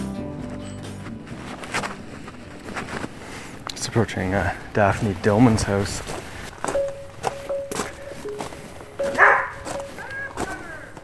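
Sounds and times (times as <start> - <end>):
thumping footsteps: 1.0 - 11.0
speech: 3.9 - 6.2
husky dog barking at a visitor: 9.1 - 10.9.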